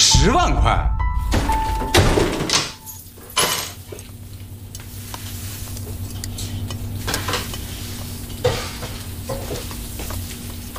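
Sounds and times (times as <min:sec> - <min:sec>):
steady low hum: 0:00.1 - 0:02.5
speech: 0:00.2 - 0:00.9
pots and pans clattering during home cooking: 0:01.9 - 0:04.0, 0:08.3 - 0:10.2
soft sizzle: 0:03.0 - 0:10.7.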